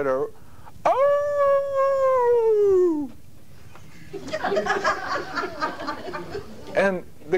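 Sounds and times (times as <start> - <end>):
speech: 0.0 - 1.0, 6.0 - 7.3
person imitating a dog's howl: 0.8 - 3.1
bursts of laughter: 3.9 - 6.8.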